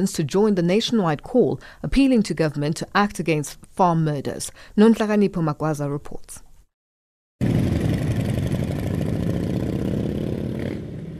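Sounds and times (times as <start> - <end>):
speech: 0.0 - 6.4
motorcycle engines idling during protest ride on KE Masinga Road in Durban: 7.4 - 11.1.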